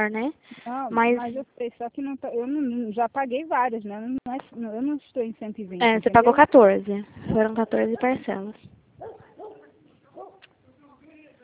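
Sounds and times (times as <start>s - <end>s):
speech: 0.0s - 9.2s
dog barking: 9.0s - 10.5s.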